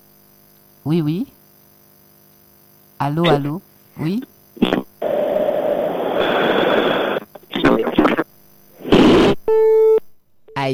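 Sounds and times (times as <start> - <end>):
speech: 0.8 - 1.4, 3.0 - 4.7
telephone line static bursts after a call is cut off: 3.0 - 10.7.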